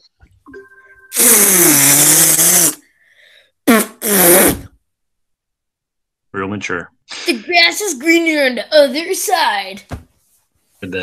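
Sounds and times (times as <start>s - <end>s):
person imitating fart sounds with a buzzy raspberry: 1.1s - 2.8s, 3.6s - 4.8s
speech: 6.6s - 10.0s, 10.8s - 11.0s.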